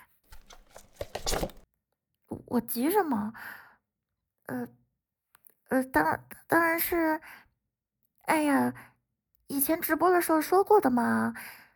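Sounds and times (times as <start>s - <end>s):
prize package torn open and unwrapped: 0.3s - 1.6s
speech: 2.5s - 3.6s, 4.5s - 4.8s, 5.7s - 7.4s, 8.3s - 8.9s, 9.5s - 11.6s.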